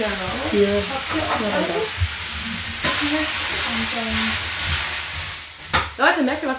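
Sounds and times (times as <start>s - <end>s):
faint murmured voices: 0.0s - 2.0s
speech: 0.0s - 2.1s, 3.0s - 4.8s, 6.0s - 6.5s
wooden spoon stirring a full simmering pot: 0.0s - 5.7s
pot simmering with steady bubbling hiss: 0.0s - 6.5s.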